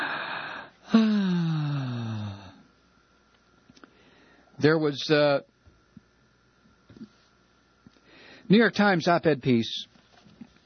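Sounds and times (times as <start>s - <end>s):
deep breath with gasping intake and voiced exhale: 0.0s - 2.6s, 3.9s - 4.6s, 8.0s - 8.5s
speech: 4.6s - 5.5s, 8.5s - 9.9s.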